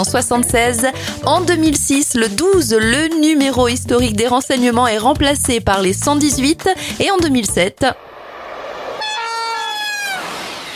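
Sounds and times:
speech: 0:00.0 - 0:08.1
TGV high-speed train rail noise rushing: 0:08.0 - 0:10.7
TGV high-speed train horn: 0:09.0 - 0:10.4.

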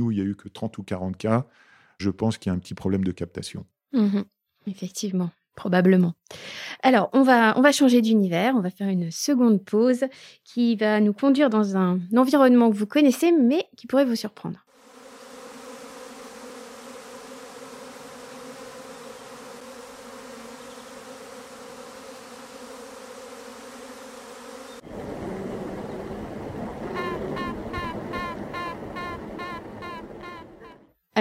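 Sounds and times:
speech: 0:00.0 - 0:14.7
honeybees buzzing inside a hive: 0:14.7 - 0:30.8.

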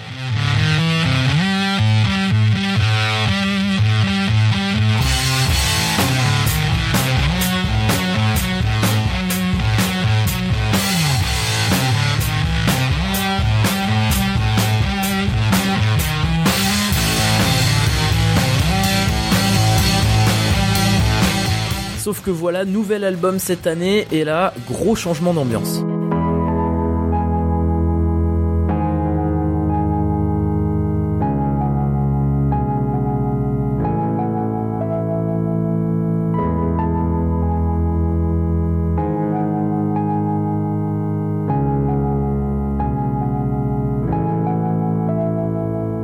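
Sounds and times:
garage rock with gritty distorted guitar and pounding beat: 0:00.0 - 0:46.0
speech: 0:22.3 - 0:26.0.

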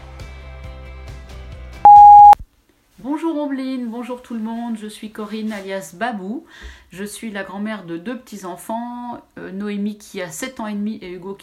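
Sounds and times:
loud electronic answering machine style beep: 0:01.9 - 0:02.4
speech: 0:03.0 - 0:11.4.

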